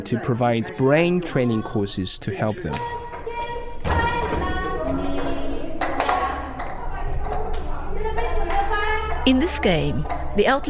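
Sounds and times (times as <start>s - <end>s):
speech: 0.0s - 3.0s, 9.3s - 10.6s
busy backdrop of voices: 0.0s - 10.6s
hand clapping: 5.8s - 6.8s.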